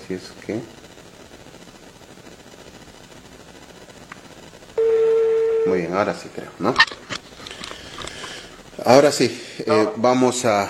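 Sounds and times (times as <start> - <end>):
telephone line hiss as a call is connected: 0.0 - 9.7
speech: 0.1 - 0.8, 5.6 - 7.1, 8.8 - 10.6
steady mid-pitched telephone beep tone: 4.8 - 5.9.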